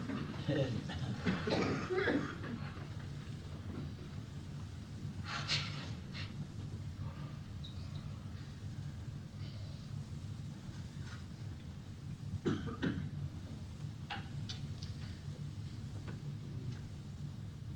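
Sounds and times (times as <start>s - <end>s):
steady low rumble: 0.0s - 17.7s
several people coughing on request: 0.4s - 2.8s, 12.4s - 13.2s.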